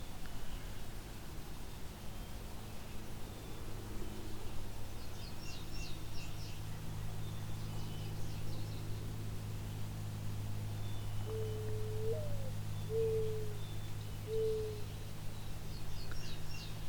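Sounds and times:
steady low hum: 0.0s - 16.8s
mourning dove cooing: 11.2s - 15.0s.

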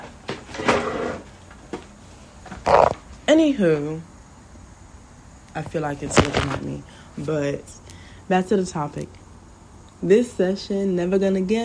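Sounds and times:
chair being moved: 0.0s - 1.5s
speech: 3.3s - 4.1s, 5.6s - 9.2s, 10.0s - 11.6s.

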